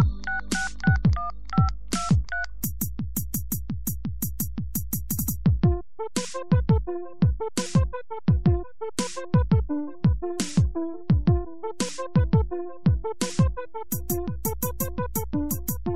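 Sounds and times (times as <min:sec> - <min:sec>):
telephone keypad tones as a number is dialed: 0:00.0 - 0:02.5
thumping electronic beat with booming bass drops: 0:00.0 - 0:15.9.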